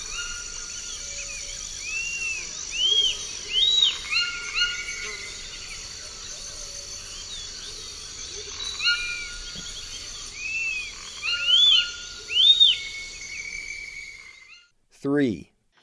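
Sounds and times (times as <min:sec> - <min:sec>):
Zimmer's flatbill song in the eastern lowlands of South America: 0:00.0 - 0:05.8, 0:08.3 - 0:14.7
faint insect background: 0:00.0 - 0:14.7
speech: 0:15.1 - 0:15.5.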